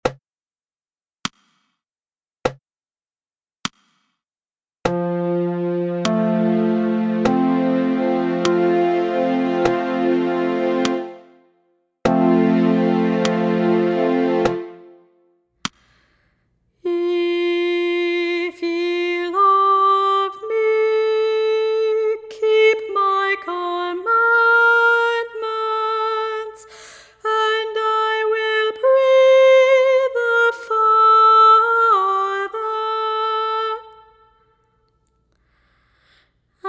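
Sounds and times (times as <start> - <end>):
soprano singing: 4.9 - 11.3, 12.1 - 15.0, 16.9 - 34.1.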